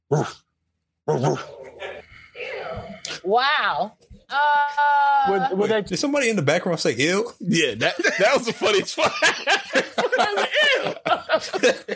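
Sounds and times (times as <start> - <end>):
speech: 0.1 - 0.4, 1.1 - 1.6, 3.3 - 11.9
person imitating dog barks: 1.1 - 1.7
laughter: 7.8 - 11.9.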